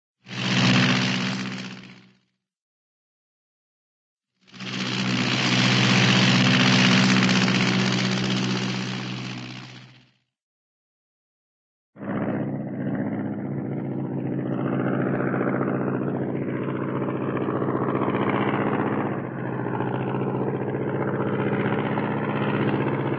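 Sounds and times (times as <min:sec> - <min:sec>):
Bleriot propeller airplane passing by: 0:00.3 - 0:02.1, 0:04.5 - 0:10.0, 0:12.0 - 0:23.1.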